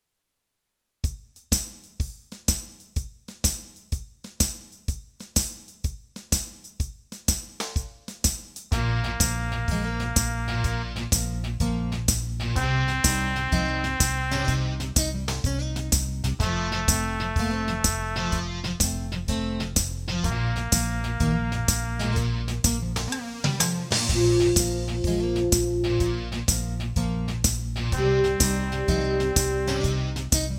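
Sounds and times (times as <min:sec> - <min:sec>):
funky beat: 0:01.0 - 0:30.5
brass practice: 0:08.7 - 0:11.2, 0:12.6 - 0:15.0, 0:16.4 - 0:18.8, 0:20.1 - 0:22.6, 0:24.1 - 0:26.4, 0:27.9 - 0:30.5.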